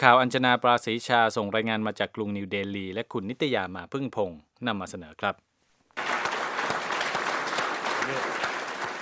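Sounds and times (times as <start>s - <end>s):
speech: 0.0s - 5.5s, 8.1s - 8.3s
large crowd of scientists applauding: 6.0s - 8.9s
scientists cheering: 6.0s - 8.9s.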